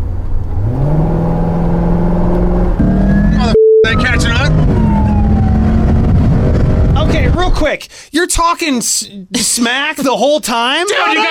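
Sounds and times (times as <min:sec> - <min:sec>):
car engine accelerating hard during a merge: 0:00.0 - 0:07.4
speech: 0:07.7 - 0:11.3.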